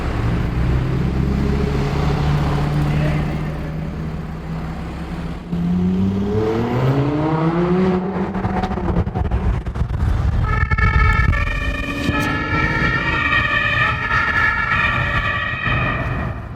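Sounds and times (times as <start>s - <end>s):
police car siren wailing in pursuit: 0.0s - 4.5s, 10.4s - 16.5s
rumble of engine and road noise: 0.0s - 16.5s.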